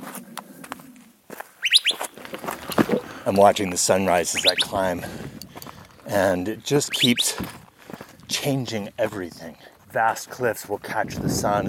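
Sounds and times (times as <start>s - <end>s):
rustles: 0.0s - 8.3s
soft crunching footsteps: 0.0s - 11.0s
birds chirping at dawn: 1.6s - 7.5s
speech: 3.2s - 5.4s, 6.1s - 7.6s, 8.4s - 11.6s.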